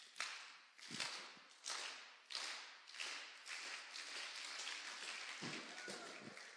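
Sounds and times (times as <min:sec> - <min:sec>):
audience clapping in a steady slow rhythm: 0:00.0 - 0:06.5
crowd noise: 0:05.4 - 0:06.5.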